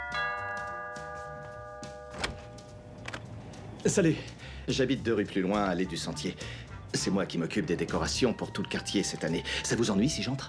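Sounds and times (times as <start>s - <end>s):
doorbell chime ringing at a house door: 0.0s - 3.8s
speech: 3.8s - 10.4s.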